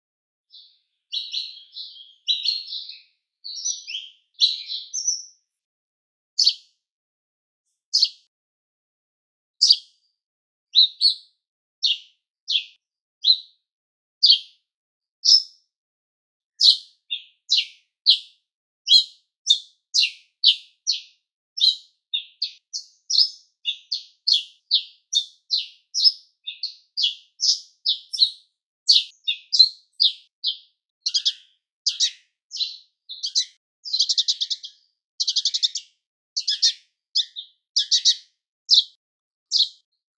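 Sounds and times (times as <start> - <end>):
house sparrow calling: 0.5 - 5.5, 6.4 - 6.7, 7.8 - 8.3, 9.6 - 10.0, 10.7 - 13.6, 14.2 - 14.6, 15.2 - 15.6, 16.6 - 39.9.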